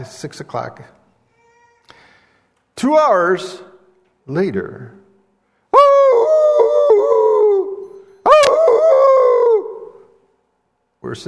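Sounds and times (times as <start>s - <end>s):
speech: 0.0s - 1.0s, 2.8s - 3.7s, 4.3s - 5.0s, 11.0s - 11.2s
coyote howling at night heard from inside a tent: 5.8s - 10.2s.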